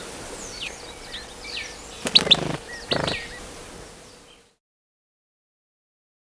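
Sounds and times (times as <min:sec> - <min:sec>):
white-throated tyrannulet sharp high chips in Ecuador: 0:02.0 - 0:03.4.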